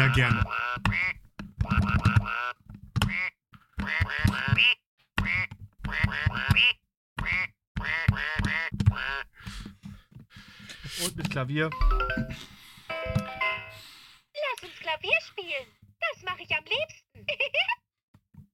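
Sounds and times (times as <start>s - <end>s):
duck quacking: 0.0s - 9.3s
speech: 0.1s - 1.0s, 11.0s - 13.2s, 14.9s - 17.8s.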